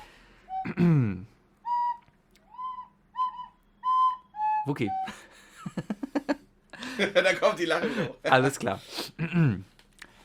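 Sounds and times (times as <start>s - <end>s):
person whistling: 0.0s - 5.3s
speech: 0.8s - 1.3s, 4.7s - 5.9s, 7.0s - 9.7s.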